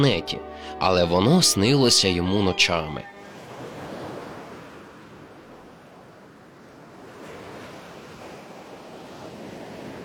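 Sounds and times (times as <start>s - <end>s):
speech: 0.0s - 3.1s
wind: 0.0s - 10.0s
sea waves washing against the shore: 3.2s - 10.0s.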